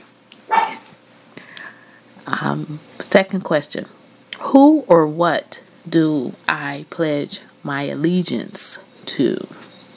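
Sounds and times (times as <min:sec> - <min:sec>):
dog barking: 0:00.5 - 0:00.9
speech: 0:02.3 - 0:09.6.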